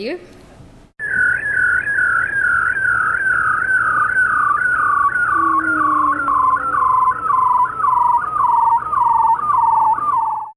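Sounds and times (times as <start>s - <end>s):
speech: 0.0s - 0.4s
male bearded seal trill mating call: 1.1s - 10.5s
faint descending sweep: 5.2s - 8.1s.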